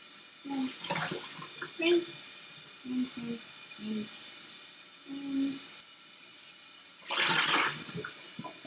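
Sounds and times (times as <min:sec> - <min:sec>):
water running from a tap while a pot is rinsed: 0:00.0 - 0:08.6
water splashing: 0:00.8 - 0:01.9, 0:07.0 - 0:08.6.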